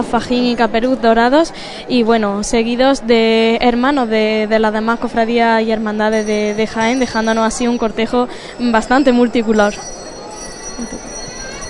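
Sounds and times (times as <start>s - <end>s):
speech: 0.0s - 10.0s, 10.8s - 11.1s
crowd murmur: 0.0s - 11.6s
small handbells ringing in a procession: 6.0s - 11.6s.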